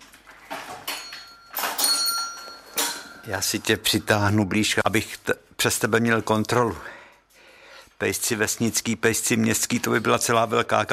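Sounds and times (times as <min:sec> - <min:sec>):
small bell rung with a bright metallic jingle: 0:00.9 - 0:03.4
speech: 0:03.2 - 0:07.0, 0:08.0 - 0:10.9.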